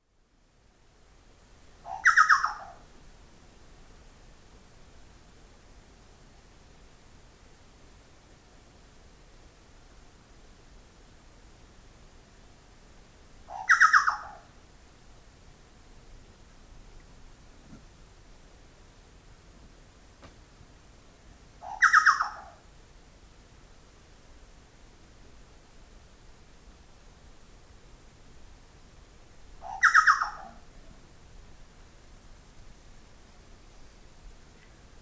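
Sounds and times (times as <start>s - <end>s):
chucao Scelorchilus rubecula calling: 1.8s - 2.9s, 13.5s - 14.5s, 21.6s - 22.6s, 29.6s - 30.7s.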